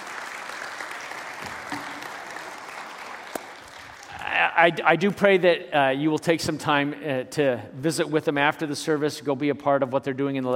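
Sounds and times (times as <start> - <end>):
crowd applauding during a church service: 0.0 - 4.6
speech: 4.6 - 10.5.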